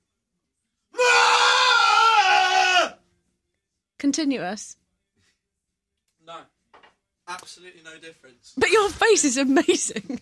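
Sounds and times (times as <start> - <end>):
person screaming: 1.0 - 3.0
speech: 4.0 - 4.8, 6.3 - 6.5, 7.3 - 10.1.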